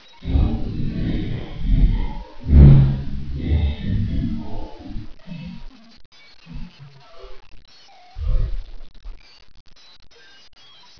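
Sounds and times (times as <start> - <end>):
drowning ambience: 0.0 - 7.5, 8.2 - 9.1.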